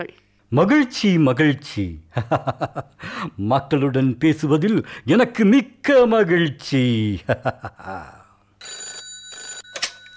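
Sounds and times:
speech: 0:00.0 - 0:08.8
telephone ringing with an incoming call: 0:08.6 - 0:10.1.

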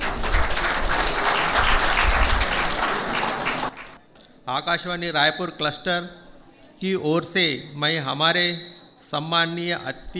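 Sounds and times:
audience applause: 0:00.0 - 0:04.0
speech: 0:04.5 - 0:06.2, 0:06.8 - 0:10.1.

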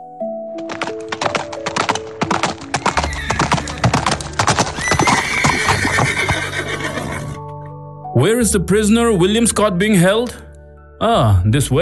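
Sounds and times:
horse hooves clip-clopping: 0:00.6 - 0:07.4
horse whinnying and neighing: 0:02.7 - 0:07.5
speech: 0:08.2 - 0:11.8.

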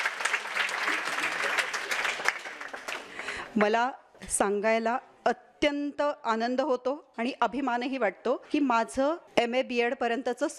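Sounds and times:
audience applause at a university event: 0:00.0 - 0:03.6
speech: 0:03.6 - 0:10.5.

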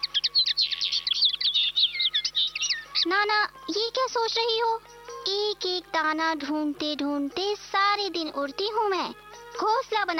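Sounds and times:
small birds chirping: 0:00.0 - 0:05.2
speech: 0:03.0 - 0:10.1.

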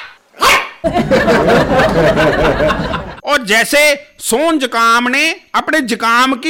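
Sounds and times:
small dog barking: 0:00.0 - 0:00.8
speech: 0:00.8 - 0:02.7, 0:03.4 - 0:06.4
laughter: 0:00.8 - 0:03.2.

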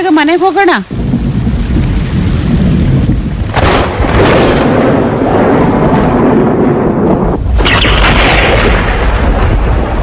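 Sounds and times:
heavy rain downpour: 0:00.0 - 0:10.0
thunder rumbling during heavy rain: 0:00.9 - 0:10.0.

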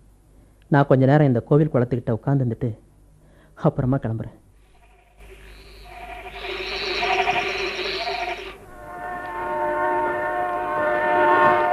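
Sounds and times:
speech: 0:00.7 - 0:02.8, 0:03.6 - 0:04.4
approaching train horn blaring: 0:05.2 - 0:11.7.

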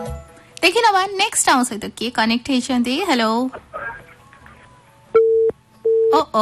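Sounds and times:
speech: 0:00.7 - 0:03.7, 0:06.1 - 0:06.4
telephone busy tone after a cut line: 0:05.2 - 0:06.2.

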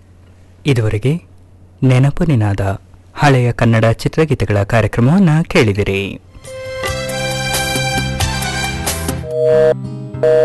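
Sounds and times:
speech: 0:00.6 - 0:06.6, 0:09.5 - 0:10.4
music: 0:06.3 - 0:10.4
telephone busy signal: 0:09.2 - 0:10.4.

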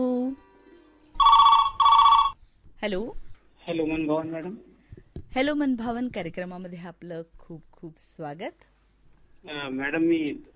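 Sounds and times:
telephone ringing for an incoming call: 0:01.2 - 0:02.4
speech: 0:02.8 - 0:04.7, 0:05.3 - 0:08.7, 0:09.4 - 0:10.5.

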